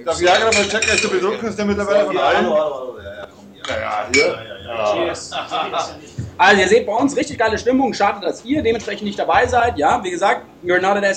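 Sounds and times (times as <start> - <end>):
lively chatter: 0.0 - 11.1
speech: 0.0 - 11.1
glasses clinking together in a toast: 0.3 - 1.2, 4.1 - 4.5.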